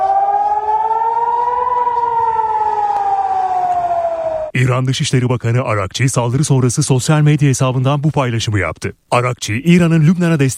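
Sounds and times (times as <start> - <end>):
air raid siren wailing over northern Israel during a missile attack: 0.0 - 4.6
speech: 4.6 - 10.5.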